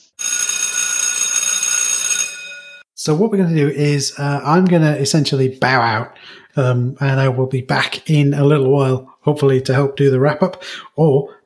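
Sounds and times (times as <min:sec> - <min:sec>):
loud bright bell ringing: 0:00.2 - 0:02.9
speech: 0:03.0 - 0:11.4.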